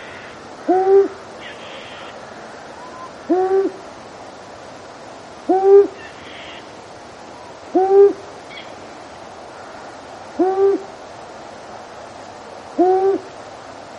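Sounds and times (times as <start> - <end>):
long-eared owl hooting: 0.0 - 2.2, 2.8 - 3.8, 5.5 - 6.7, 7.7 - 8.7, 10.4 - 10.9, 12.8 - 13.3.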